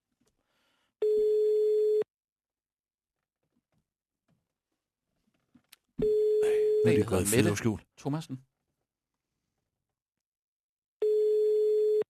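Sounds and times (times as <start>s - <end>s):
telephone ringing tone through a loudspeaker: 1.0s - 2.1s, 6.0s - 7.2s, 11.0s - 12.0s
speech: 6.8s - 8.5s.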